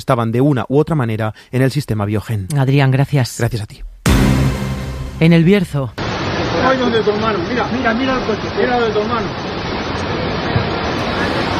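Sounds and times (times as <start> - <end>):
speech: 0.0 - 4.3, 5.2 - 6.0, 6.6 - 9.5
torrential downpour from a heavy storm in El Bierzo: 6.0 - 11.5.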